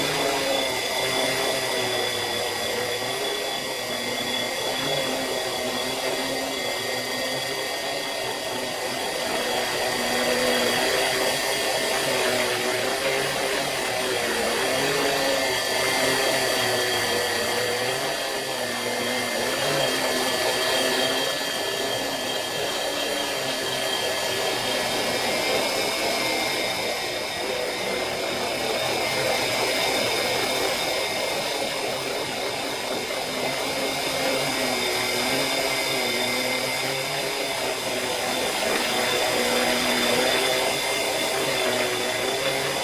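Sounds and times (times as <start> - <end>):
drone hovering close: 0.0 - 42.8.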